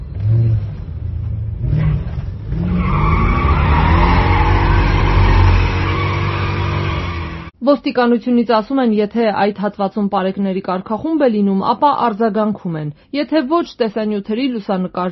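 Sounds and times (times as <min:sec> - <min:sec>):
car engines revving while speeding through city streets at night: 0:00.0 - 0:07.5
car tyres screeching on city streets at night: 0:01.8 - 0:07.5
speech: 0:07.7 - 0:15.1.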